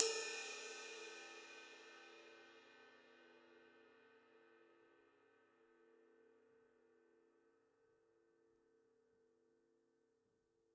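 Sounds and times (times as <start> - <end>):
ride cymbal on a drum kit: 0.0 - 2.4.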